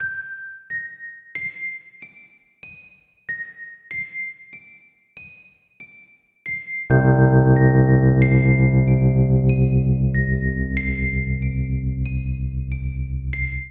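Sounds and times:
tense cinematic electric keyboard ostinato in C minor: 6.9s - 13.6s.

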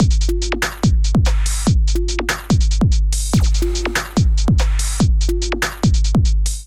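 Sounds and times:
drum beat: 0.0s - 6.6s.

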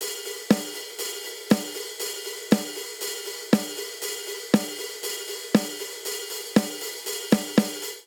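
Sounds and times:
classic rock hi-hat at 119 bpm: 0.0s - 8.0s
classic rock snare drum at 119 bpm: 0.0s - 8.0s.

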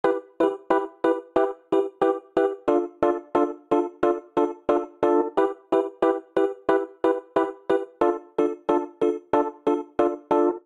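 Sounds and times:
MIDI chord progression accompaniment in A minor at 93 bpm: 0.0s - 10.6s.

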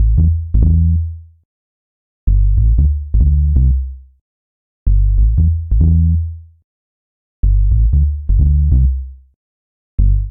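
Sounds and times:
sub bassline in A minor: 0.0s - 1.2s, 2.3s - 4.0s, 4.9s - 6.4s, 7.4s - 9.2s, 10.0s - 10.3s.

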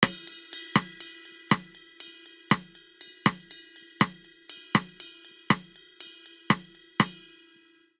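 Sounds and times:
bossa nova snare drum pattern: 0.0s - 1.7s, 2.5s - 2.7s, 3.3s - 4.2s, 4.8s - 5.7s, 6.5s - 7.2s
bossa nova ride cymbal pattern: 0.0s - 7.4s.

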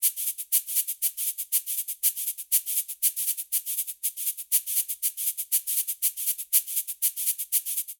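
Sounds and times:
cabasa playing a Latin samba rhythm: 0.0s - 7.9s.

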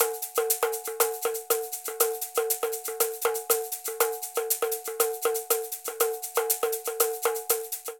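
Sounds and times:
Candombe shaker: 0.0s - 7.9s
Candombe tambourine: 0.0s - 7.9s.

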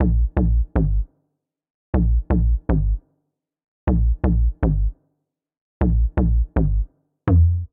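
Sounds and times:
bass line in G sharp minor at 124 bpm: 0.0s - 1.1s, 2.0s - 3.0s, 3.9s - 4.9s, 5.8s - 7.7s.

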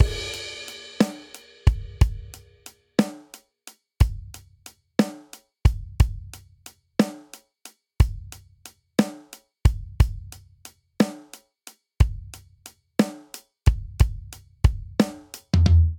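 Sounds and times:
swing RnB drum groove in 6/8 at 90 bpm: 0.0s - 3.4s, 4.0s - 15.9s.

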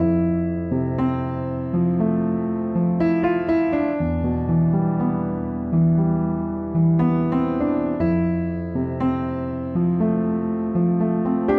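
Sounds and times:
upright piano chord progression in F major to E minor at 60 bpm: 0.0s - 11.5s.

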